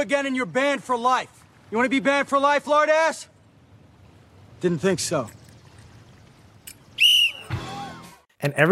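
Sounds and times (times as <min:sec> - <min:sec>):
speech: 0:00.0 - 0:03.3, 0:04.6 - 0:05.4, 0:08.4 - 0:08.7
lifeguard blowing a shrill whistle: 0:07.0 - 0:08.2.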